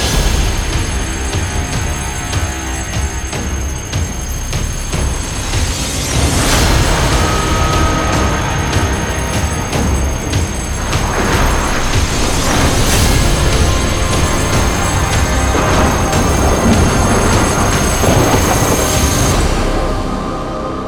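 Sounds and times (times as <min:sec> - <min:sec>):
big mega win jingle ambience: 0:00.2 - 0:20.7.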